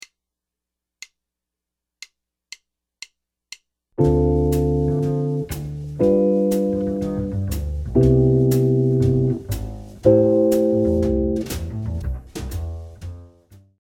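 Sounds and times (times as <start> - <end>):
jazz chord progression: 4.0 - 13.4.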